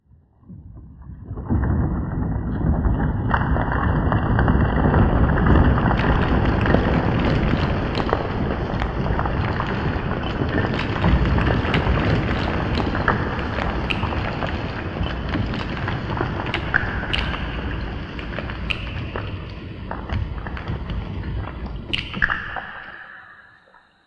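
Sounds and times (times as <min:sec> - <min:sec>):
avalanche: 0:01.2 - 0:22.3.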